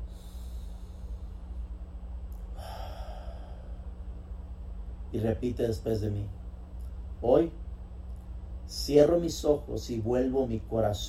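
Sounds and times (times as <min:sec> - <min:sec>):
deep breath: 0:00.0 - 0:01.8, 0:02.5 - 0:04.2
low electrical hum: 0:00.0 - 0:11.0
speech: 0:05.1 - 0:06.4, 0:07.2 - 0:07.6, 0:08.7 - 0:11.0.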